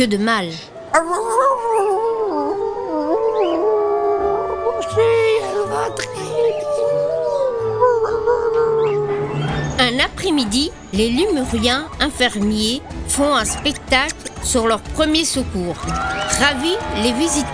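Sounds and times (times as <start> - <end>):
speech: 0.0 - 1.9, 9.9 - 17.5
several wolves howling: 2.2 - 9.4.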